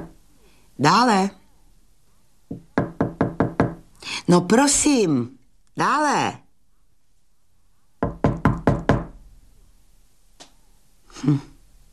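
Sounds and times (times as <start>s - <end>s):
speech: 0.8s - 1.4s, 4.3s - 6.4s, 11.2s - 11.5s
knocking on a door: 2.5s - 3.8s, 8.0s - 9.2s.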